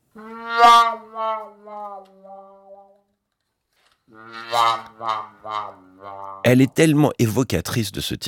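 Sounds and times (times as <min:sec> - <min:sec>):
wah-wah muted trumpet playing: 0:00.0 - 0:03.0, 0:04.1 - 0:06.6
speech: 0:04.6 - 0:05.8, 0:06.4 - 0:08.2.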